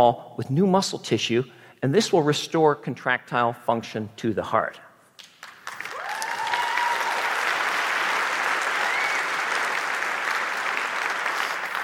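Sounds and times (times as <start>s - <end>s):
speech: 0.0s - 4.9s
large audience applause: 5.4s - 11.8s.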